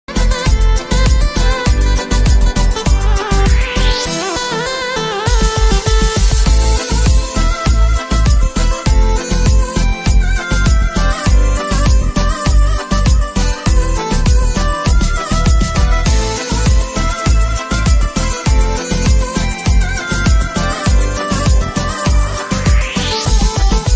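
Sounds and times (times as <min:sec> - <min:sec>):
Tamil love background music flute ringtone: 0:00.1 - 0:23.9.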